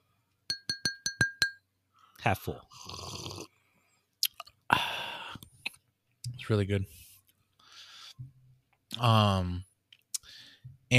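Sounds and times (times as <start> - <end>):
drinking glass tapped and clinking: 0.5 - 1.7
speech: 2.2 - 3.0, 6.5 - 7.0, 9.0 - 9.7.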